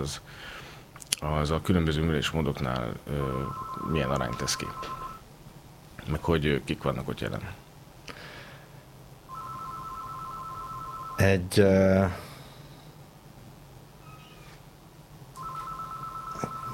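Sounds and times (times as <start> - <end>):
speech: 0.0 - 0.6, 1.2 - 5.0, 6.1 - 7.6, 11.2 - 12.3
telephone ringing with a steady electronic tone: 3.2 - 5.2, 9.3 - 11.3, 15.4 - 16.7.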